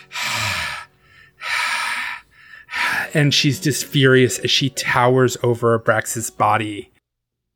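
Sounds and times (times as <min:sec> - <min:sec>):
person imitating ghost's rasping breathing: 0:00.0 - 0:03.2
speech: 0:03.1 - 0:06.9.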